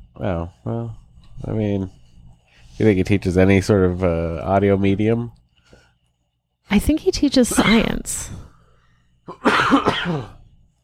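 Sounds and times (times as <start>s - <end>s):
speech: 0.2s - 2.0s, 2.8s - 5.4s, 6.7s - 8.4s, 9.3s - 10.4s
rough throaty cough: 7.5s - 7.9s, 9.3s - 10.4s.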